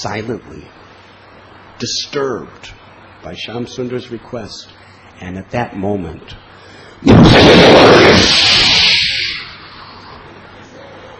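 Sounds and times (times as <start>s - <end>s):
speech: 0.0s - 0.9s, 1.8s - 6.4s
lightning bolt striking a house with thunderous roar: 7.1s - 9.6s.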